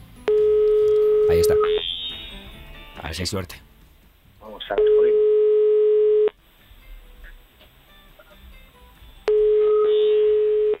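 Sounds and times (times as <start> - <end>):
telephone ringback tone while dialing an unanswered call: 0.3 - 2.5, 4.8 - 6.4, 9.3 - 10.7
speech: 3.1 - 3.7, 4.7 - 5.1.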